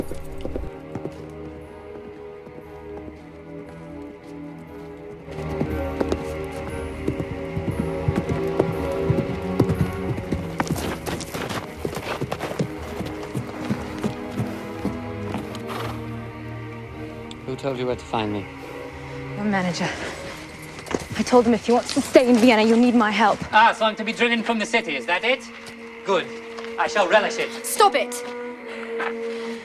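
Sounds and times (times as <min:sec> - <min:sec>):
galloping horse hooves: 0:00.0 - 0:16.3, 0:19.8 - 0:26.7
music: 0:00.0 - 0:29.6
speech: 0:17.6 - 0:18.6, 0:19.5 - 0:20.2, 0:21.2 - 0:28.3.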